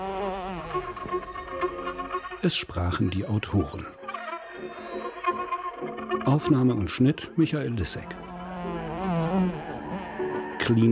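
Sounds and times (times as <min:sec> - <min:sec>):
fly buzzing: 0:00.0 - 0:02.4, 0:04.0 - 0:05.9, 0:08.0 - 0:10.9
speech: 0:02.4 - 0:04.0, 0:06.3 - 0:08.8, 0:10.7 - 0:10.9.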